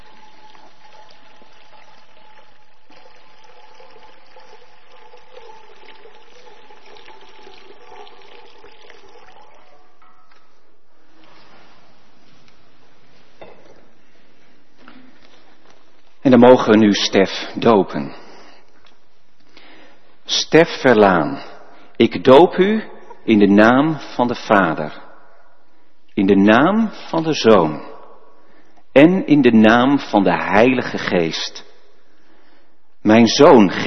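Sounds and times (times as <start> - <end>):
water poured into a baptismal font: 0.0 - 10.0
faint shuffling in a reverberant room: 10.4 - 16.3
speech: 16.3 - 18.2, 20.5 - 25.0, 26.2 - 27.9, 29.0 - 31.6, 33.0 - 33.8.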